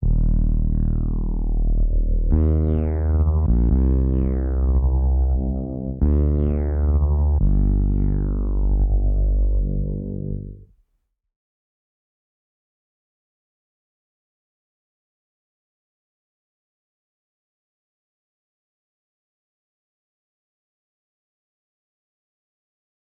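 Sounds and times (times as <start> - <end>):
G minor reese synth melody loop: 0.0 - 10.7.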